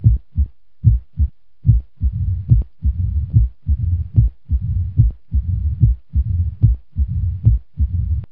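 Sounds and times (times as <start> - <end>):
heartbeat: 0.0 - 8.2.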